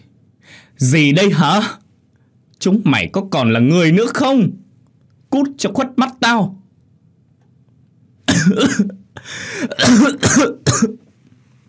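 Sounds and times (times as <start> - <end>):
speech: 0.8 - 1.8, 2.6 - 4.6, 5.3 - 6.6, 8.4 - 11.0
man coughing in an angry fit: 8.2 - 11.1.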